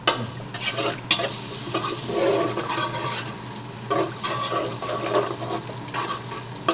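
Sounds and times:
fresh breadcrumbs toasting in oil with garlic cloves: 0:00.0 - 0:06.7
scraping stirring strokes: 0:00.5 - 0:03.3, 0:03.9 - 0:06.3.

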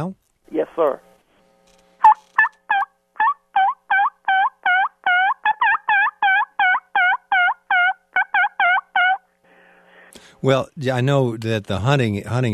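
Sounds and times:
speech: 0:00.0 - 0:01.1, 0:10.4 - 0:12.5
turkey call imitating a gobble: 0:02.0 - 0:09.3.

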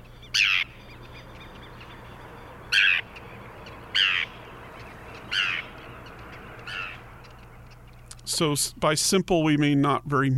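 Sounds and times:
low steady hum: 0:00.0 - 0:10.3
Forster's tern harsh raspy descending calls: 0:00.2 - 0:08.3
speech: 0:08.4 - 0:10.3.

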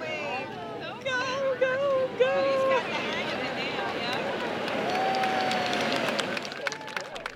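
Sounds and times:
voices calling out: 0:00.0 - 0:07.3
outdoor beach crowd cheering and clapping as sea turtles are released: 0:01.8 - 0:07.3.

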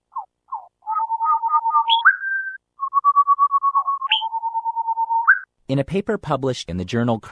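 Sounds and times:
rufous-and-white wren male and female duet: 0:00.5 - 0:05.5
speech: 0:05.7 - 0:07.3.

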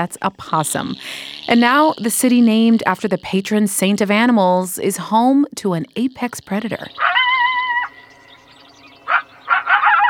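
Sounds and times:
speech: 0:00.0 - 0:07.2
coyotes yipping, yelping and howling: 0:06.9 - 0:10.0.

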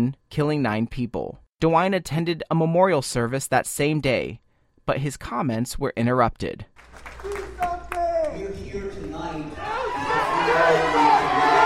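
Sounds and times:
speech: 0:00.0 - 0:07.2
crowd cheering: 0:06.8 - 0:11.6
people clapping: 0:06.8 - 0:11.6
large crowd chanting a slogan in unison: 0:09.5 - 0:11.6.

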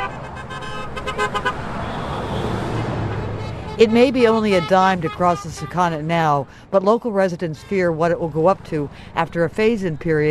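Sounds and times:
motorists honking car horns on a bridge in agreement with toll protesters: 0:00.0 - 0:06.4, 0:07.4 - 0:08.5
traffic rumble: 0:00.0 - 0:10.2
speech: 0:03.8 - 0:10.2.

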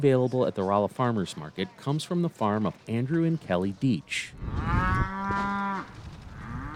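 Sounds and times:
speech: 0:00.0 - 0:05.5
female beefalo mooing on a ranch in south central Missouri: 0:04.4 - 0:06.7.

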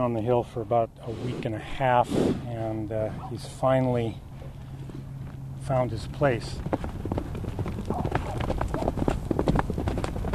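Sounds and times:
speech: 0:00.0 - 0:04.3, 0:05.6 - 0:06.9
hooves of a young Arabian gelding clip-clopping: 0:03.4 - 0:10.3.

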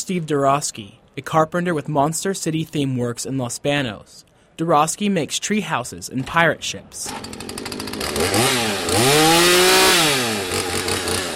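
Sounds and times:
speech: 0:00.1 - 0:09.3
chainsaw idling and revving while cutting into wood: 0:07.0 - 0:11.3.

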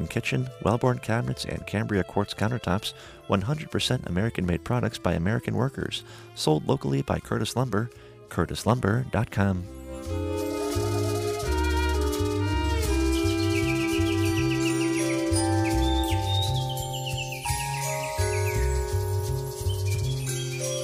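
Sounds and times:
speech: 0:00.0 - 0:10.2
steady full musical background with rhythmic low bass line: 0:00.0 - 0:20.8
recorded birdsong chirps and tweets played in a studio: 0:10.4 - 0:20.8.

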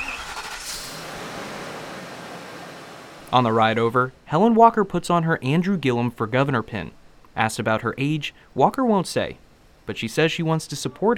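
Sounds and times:
church bus engine hum: 0:00.0 - 0:03.3
broadband road noise of a bus: 0:00.0 - 0:03.6
speech: 0:03.3 - 0:11.1.

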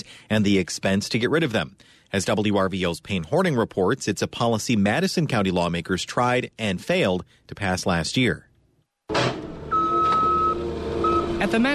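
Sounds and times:
speech: 0:00.3 - 0:08.5, 0:11.4 - 0:11.7
skid steer loader collecting plastic bags at a county landfill: 0:09.3 - 0:11.7.

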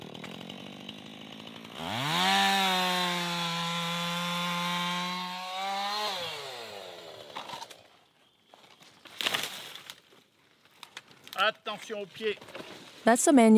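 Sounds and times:
chainsaw cutting through a fallen pine tree: 0:00.0 - 0:07.8
speech: 0:11.4 - 0:13.5.

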